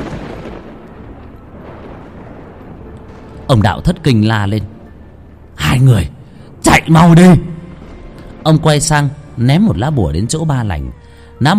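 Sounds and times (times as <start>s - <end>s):
thunder rumbling across the sky: 0.0s - 11.5s
speech: 3.5s - 4.7s, 5.6s - 7.5s, 8.4s - 11.5s.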